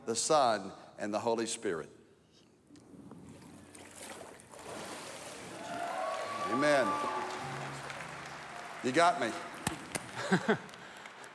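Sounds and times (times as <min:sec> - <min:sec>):
speech: 0:00.1 - 0:02.0, 0:06.5 - 0:07.1, 0:08.8 - 0:09.5, 0:10.2 - 0:10.7
water sloshing and splashing as a person rises from baptism: 0:03.1 - 0:07.2
laughter: 0:09.7 - 0:11.3.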